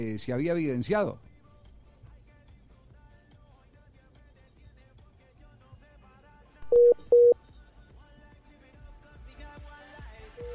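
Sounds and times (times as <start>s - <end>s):
speech: 0.0s - 1.3s
faint low tones on a telephone line: 6.6s - 7.4s, 10.4s - 10.5s
telephone keypad dialing beeps while a long-distance call is reconnected: 6.6s - 7.4s.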